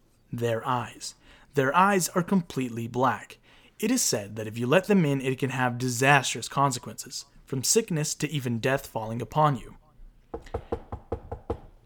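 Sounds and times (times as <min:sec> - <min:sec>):
speech: 0:00.3 - 0:10.6
firm rapid knocking on a door: 0:10.3 - 0:11.8.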